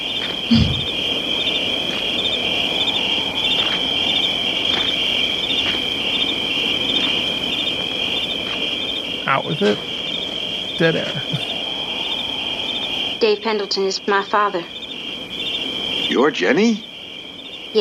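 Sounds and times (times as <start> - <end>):
crickets chirping: 0.0 - 17.7
speech: 0.5 - 0.8, 9.4 - 9.9, 10.8 - 11.4, 13.2 - 14.8, 16.2 - 16.9
low thump: 0.5 - 0.9.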